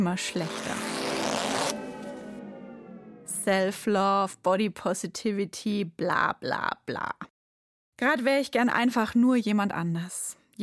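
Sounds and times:
speech: 0.0 - 0.9, 3.4 - 7.3, 8.0 - 10.6
zipper on a new extra-tight jersey pulled up: 0.4 - 2.3.

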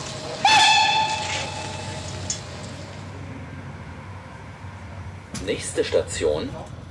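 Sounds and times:
hiss and rumble of a train arriving at a station: 0.0 - 6.8
train whistle: 0.3 - 2.4
speech: 5.4 - 6.7.

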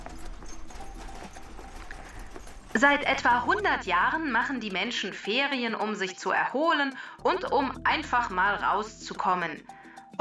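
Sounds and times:
hooves of a horse pulling a carriage clip-clopping: 0.0 - 5.3
speech: 2.8 - 10.1.

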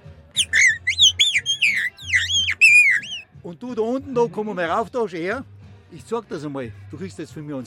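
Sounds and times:
high thin whistled notes sliding up and down in pitch: 0.4 - 3.2
speech: 3.5 - 7.6.

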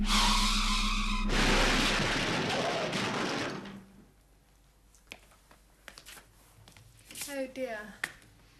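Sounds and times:
test car crash impact: 1.0 - 4.0
speech: 7.4 - 8.1.

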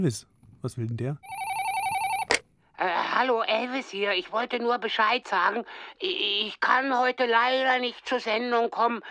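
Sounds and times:
speech: 0.0 - 1.4, 2.8 - 9.1
telephone ringing with a steady electronic tone: 1.2 - 2.4.

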